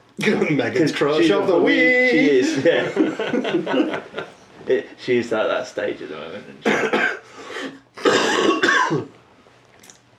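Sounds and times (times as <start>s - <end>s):
speech: 0.2s - 7.1s
laughter: 2.3s - 4.4s
person coughing: 6.6s - 9.2s.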